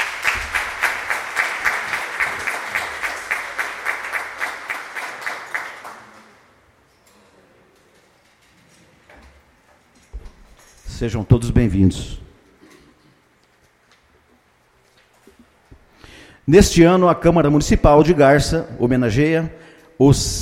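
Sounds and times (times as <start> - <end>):
audience at a municipal chamber ceremony in Garça Brazil clapping: 0.0 - 6.5
speech: 11.0 - 12.2, 16.5 - 20.4.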